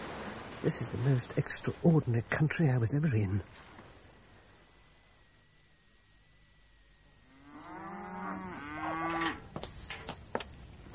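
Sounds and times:
speech: 0:00.6 - 0:03.6
spancelled cow mooing: 0:07.2 - 0:09.4.

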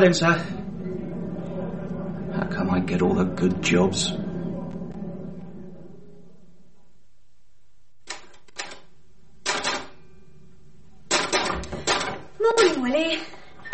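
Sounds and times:
speech: 0:00.0 - 0:00.6, 0:02.4 - 0:04.3
low murmuring: 0:00.0 - 0:07.0
typewriter clacking: 0:08.1 - 0:10.0, 0:11.1 - 0:12.8.

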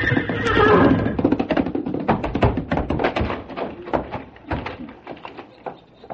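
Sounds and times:
big paint horse in a corral whinnying: 0:00.0 - 0:01.6
thumps and scuffling knocks: 0:01.1 - 0:06.1.

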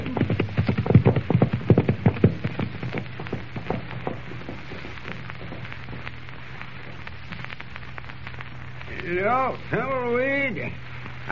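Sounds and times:
horse hooves clip-clopping as horses ride off: 0:00.0 - 0:07.8
speech: 0:09.1 - 0:10.8.

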